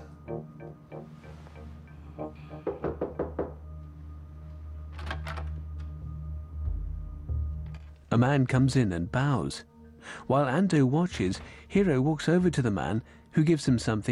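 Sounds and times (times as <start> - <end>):
knocking on a door: 2.6 - 3.6
speech: 8.1 - 14.1.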